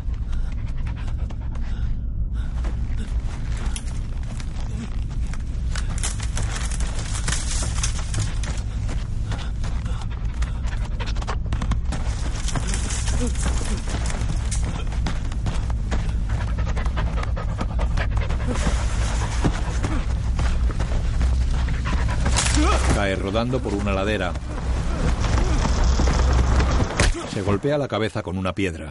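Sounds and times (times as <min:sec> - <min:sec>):
wolf panting while running through snow: 0:00.1 - 0:02.0, 0:06.0 - 0:22.5
scuffling movement in the snow: 0:03.0 - 0:27.0
speech: 0:23.3 - 0:24.5, 0:27.4 - 0:28.8.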